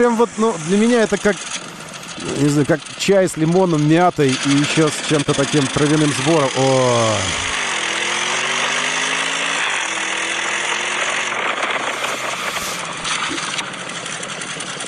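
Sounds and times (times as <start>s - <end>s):
speech: 0.0s - 7.6s
Porsche Cayenne Turbo engine revving: 0.0s - 14.2s.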